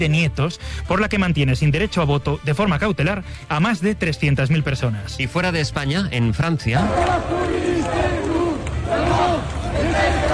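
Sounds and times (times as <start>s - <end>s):
speech: 0.0s - 8.2s
large crowd of street protesters chanting in Lyon, France: 6.8s - 10.3s.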